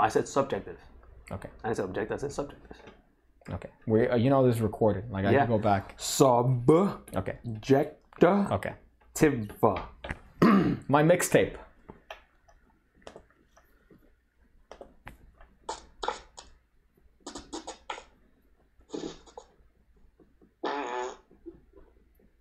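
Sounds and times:
speech: 0.0 - 11.6
fart noises: 15.6 - 16.6, 17.2 - 19.6, 20.4 - 21.8.

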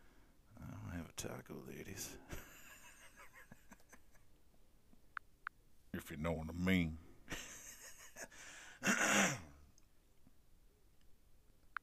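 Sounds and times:
speech: 1.2 - 2.6, 6.0 - 7.4
laughter: 2.3 - 4.3, 7.3 - 9.0
harsh throat clearing: 8.8 - 9.6.

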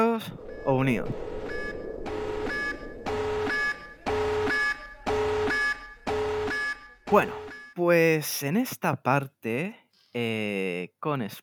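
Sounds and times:
loud electronic alarm blaring: 0.0 - 7.8
speech: 0.2 - 1.4, 7.1 - 11.4.

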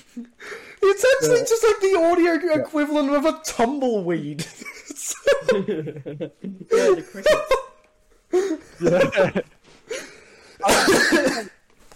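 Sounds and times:
speech: 0.1 - 0.4, 1.0 - 4.7, 5.3 - 7.6, 8.5 - 9.6, 10.6 - 11.6
laughter: 4.4 - 7.8, 8.4 - 9.6
person coughing self-consciously: 10.6 - 11.6.

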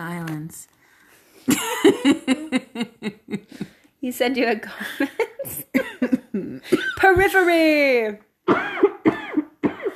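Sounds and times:
speech: 0.5 - 0.7, 1.5 - 5.8, 6.4 - 8.8
laughter: 1.5 - 3.8
person coughing and clearing the throat: 5.5 - 7.0, 8.5 - 9.9.

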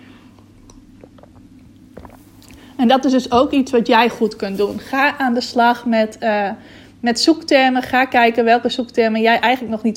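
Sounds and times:
steady low hum: 0.0 - 9.9
person sipping water: 0.2 - 2.8
person swallowing water: 0.4 - 2.7
speech: 2.8 - 9.9.

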